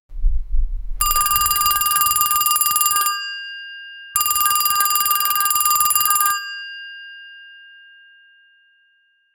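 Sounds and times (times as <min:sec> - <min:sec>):
Android phone ringing: 0:01.0 - 0:03.4, 0:04.2 - 0:07.0.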